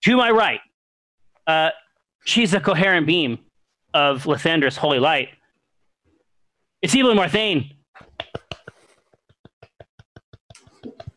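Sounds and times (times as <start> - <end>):
speech: 0.0 - 0.7, 1.5 - 5.4, 6.8 - 7.8
brief bursts of voice or laughter: 8.0 - 11.1
soft hand claps: 8.0 - 11.1.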